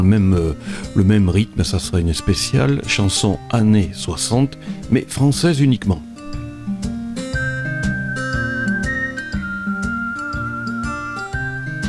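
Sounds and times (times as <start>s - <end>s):
speech: 0.0s - 6.1s
bright whistled melody in an instrumental pop intro: 7.2s - 11.8s
upbeat band with steady drums and bass: 7.4s - 11.8s.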